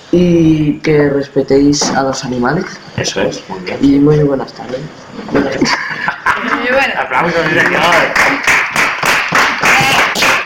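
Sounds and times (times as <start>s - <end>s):
lively voices: 0.0s - 10.4s
speech: 0.1s - 8.6s
people chuckling: 5.4s - 7.8s
audience clapping: 7.3s - 10.4s
cheering: 9.1s - 10.4s.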